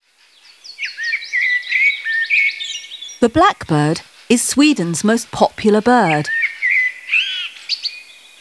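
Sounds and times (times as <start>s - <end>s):
lark song: 0.2s - 3.2s, 6.3s - 8.3s
speech: 3.2s - 6.4s.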